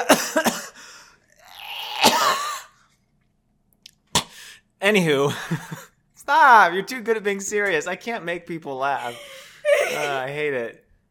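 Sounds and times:
forceful cough: 0.0s - 0.8s, 2.0s - 2.8s
speech: 4.9s - 10.8s.

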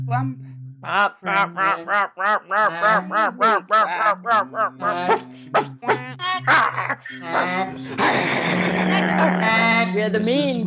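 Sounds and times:
speech: 0.1s - 10.6s
laughter: 0.8s - 5.8s, 6.5s - 10.0s
duck quacking: 1.0s - 5.7s.

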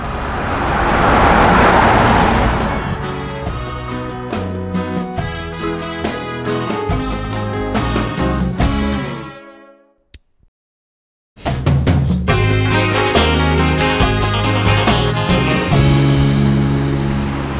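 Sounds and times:
car passing on a Chicago street outside a corner eatery: 0.0s - 5.1s, 15.7s - 17.5s
melodic instrumental tune with steady stepping notes: 2.4s - 10.0s, 12.3s - 17.4s.

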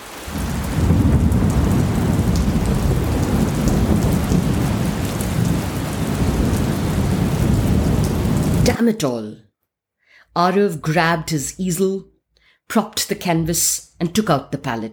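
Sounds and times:
continuous deep rumble of thunder: 0.0s - 8.8s
heavy rain pouring: 0.0s - 8.8s
speech: 8.8s - 9.4s, 10.3s - 12.1s, 12.7s - 14.9s.

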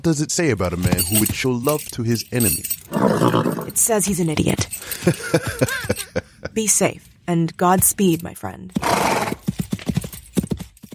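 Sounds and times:
speech: 0.0s - 9.0s
horse hooves clip-clopping at a trot: 0.6s - 4.8s, 7.6s - 10.9s
laughter: 4.9s - 6.6s.

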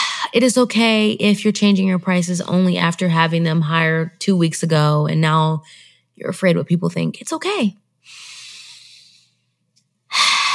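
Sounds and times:
speech: 0.3s - 8.3s
slow deep breathing from a breathing exercise: 8.0s - 10.5s.

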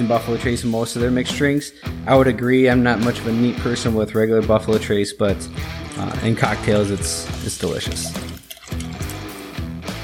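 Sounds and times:
speech: 0.0s - 8.3s
liquid glugging from a bottle into a measuring cup: 5.8s - 9.5s.

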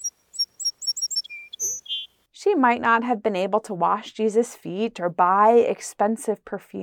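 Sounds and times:
sparrow singing: 0.0s - 2.2s
speech: 2.4s - 6.8s.

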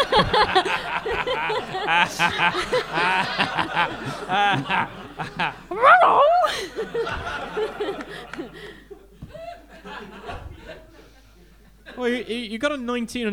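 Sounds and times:
audience laughing: 0.0s - 12.5s
speech: 1.9s - 8.8s, 12.0s - 13.3s
person imitating a dog barking and whimpering with a puppet: 5.7s - 6.5s.

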